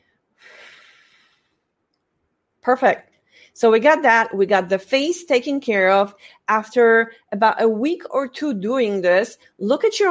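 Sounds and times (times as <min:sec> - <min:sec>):
deliberate breathing in and out: 0:00.0 - 0:01.7, 0:03.3 - 0:03.6
speech: 0:02.6 - 0:10.1.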